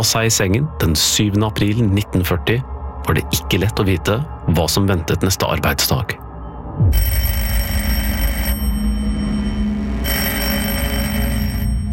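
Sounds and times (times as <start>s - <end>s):
speech: 0.0s - 6.2s, 6.8s - 7.5s
telephone ringing with a harsh metallic bell clatter: 6.9s - 11.9s.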